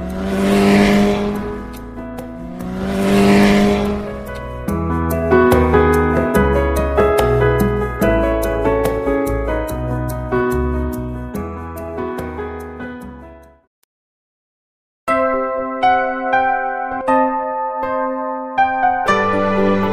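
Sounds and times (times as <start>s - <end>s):
motorcycle engine revving: 0.0s - 4.3s
cheerful music track: 3.6s - 13.7s, 15.1s - 19.9s.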